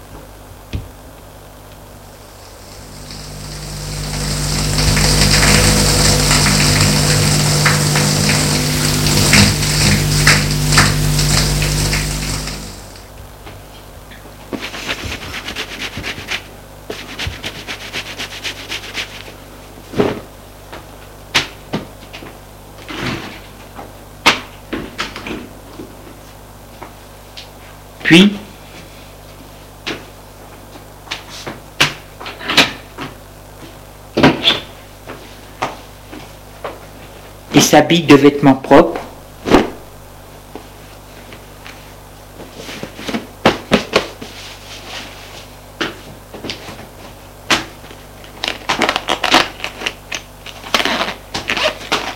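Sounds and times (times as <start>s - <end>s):
faint hum: 0.0s - 52.1s
shower spraying water: 2.2s - 13.1s
speech: 37.7s - 39.0s.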